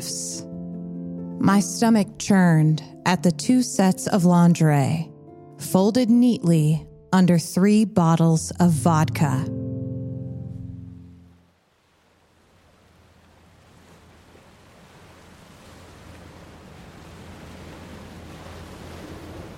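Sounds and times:
speech: 1.4 - 9.6
brief musical tone: 8.0 - 11.4
gentle ocean waves washing onto the shore: 11.7 - 19.5.

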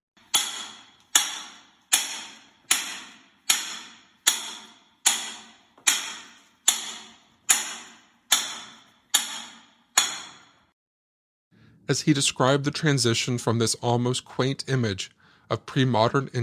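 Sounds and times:
early miner's hand hammer clanging on metal underground: 0.2 - 10.7
speech: 11.9 - 16.4.

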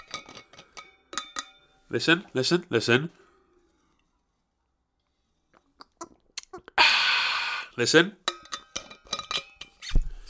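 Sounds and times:
stainless steel water bottle handled with clinks and taps: 0.0 - 1.8, 8.2 - 10.1
speech: 1.9 - 3.2, 7.8 - 8.2
man drinking a swig from a stainless steel water bottle: 5.6 - 7.9.

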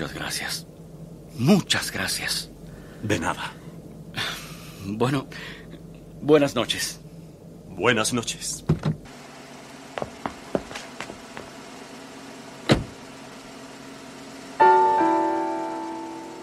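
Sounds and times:
speech: 0.0 - 0.8, 1.4 - 3.6, 4.8 - 5.6, 6.2 - 7.0, 7.8 - 8.8
car engine idling: 0.0 - 16.4
solid thump inside a car: 12.7 - 13.0.

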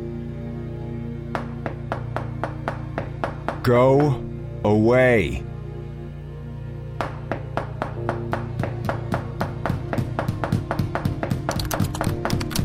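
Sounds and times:
rapid knocking: 1.4 - 3.7, 7.0 - 12.6
speech: 3.6 - 5.5.

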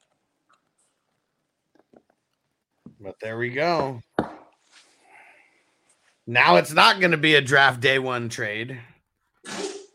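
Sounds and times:
speech: 3.0 - 4.1, 6.3 - 8.9
person sneezing: 9.4 - 9.9.

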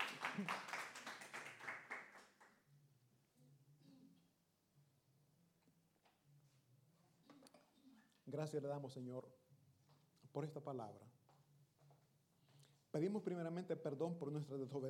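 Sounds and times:
audience applauding for the Lord: 0.0 - 2.5
speech: 0.4 - 0.7, 8.3 - 9.4, 10.3 - 11.2, 13.0 - 14.8.

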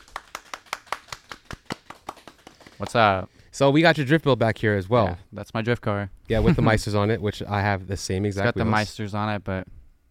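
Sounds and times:
hand clapping: 0.0 - 3.1
speech: 2.8 - 9.7.

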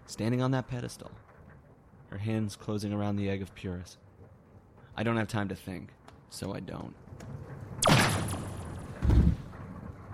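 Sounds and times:
speech: 0.1 - 1.3, 2.1 - 4.0, 5.0 - 7.4
gunshot: 7.8 - 9.4.

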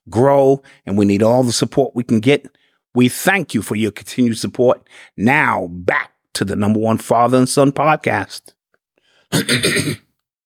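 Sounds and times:
speech: 0.1 - 8.6, 9.3 - 10.0
loud harsh raspy cough: 9.3 - 10.2.

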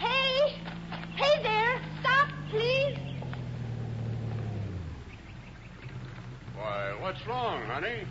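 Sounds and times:
faint bird chirps: 0.0 - 3.6, 4.6 - 6.4
car engine rumble approaching along the road: 0.0 - 8.0
speech: 7.1 - 8.0.

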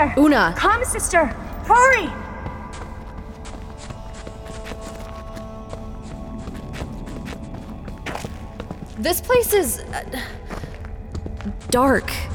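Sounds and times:
speech: 0.0 - 2.2, 9.0 - 10.4, 11.7 - 12.3
footsteps jogging down a damp stone hallway: 7.0 - 12.3.

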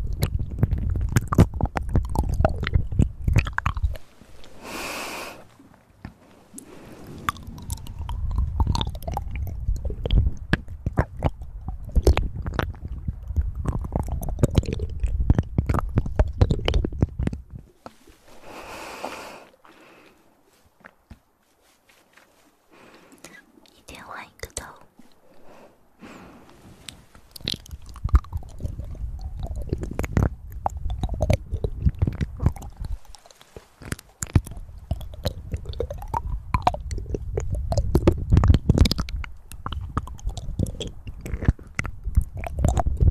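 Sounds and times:
chewing clicks: 0.0 - 18.0, 26.9 - 43.0
wet mouth sounds: 0.0 - 21.8, 22.7 - 43.0.

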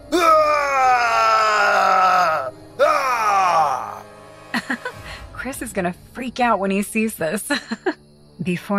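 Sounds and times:
man screaming: 0.0 - 4.0
speech: 5.5 - 8.7.

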